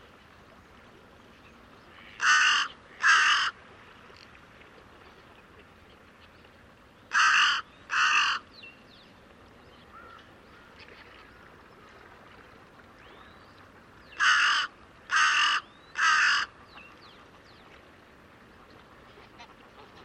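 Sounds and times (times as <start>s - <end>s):
bird cawing: 2.0s - 3.6s, 7.1s - 8.4s, 9.9s - 10.2s, 14.2s - 16.5s.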